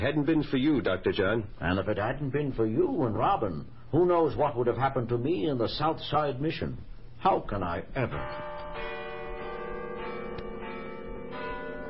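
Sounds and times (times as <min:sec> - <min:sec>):
speech: 0:00.0 - 0:08.9
church bells pealing at midnight on Christmas: 0:08.0 - 0:11.8.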